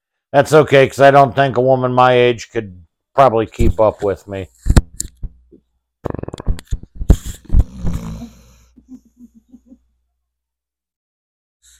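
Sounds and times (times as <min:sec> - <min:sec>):
speech: 0:00.3 - 0:04.7
dog snoring: 0:06.1 - 0:08.8.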